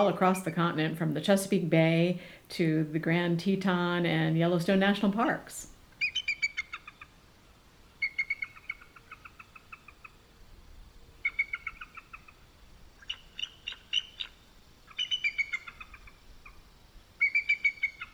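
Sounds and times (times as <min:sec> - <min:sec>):
speech: 0:00.0 - 0:05.7
bald eagle chirping: 0:04.8 - 0:07.2, 0:07.9 - 0:10.3, 0:11.2 - 0:18.1.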